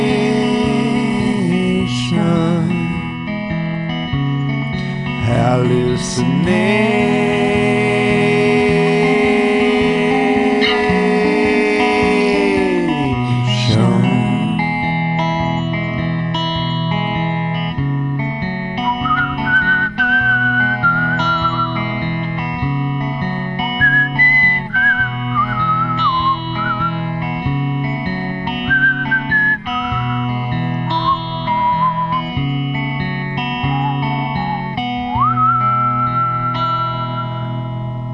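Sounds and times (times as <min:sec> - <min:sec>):
band backing of bass and guitar: 0:00.0 - 0:38.1
speech: 0:06.2 - 0:06.8
whistled melody: 0:18.8 - 0:22.1, 0:23.7 - 0:27.2, 0:28.5 - 0:32.6, 0:33.4 - 0:37.7.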